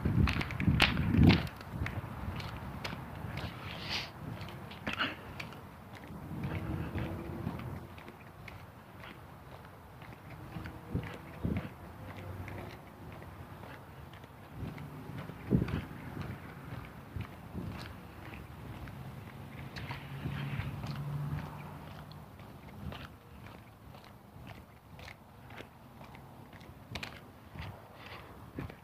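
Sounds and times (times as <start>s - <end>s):
footsteps of someone taking a morning walk outdoors on a hot sunny day: 0.0s - 28.8s.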